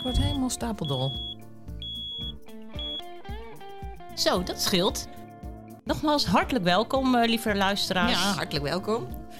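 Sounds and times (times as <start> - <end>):
speech: 0.0 - 1.4, 4.2 - 5.2, 5.8 - 9.2
smoke detector low-battery alarm beeping: 0.0 - 3.1.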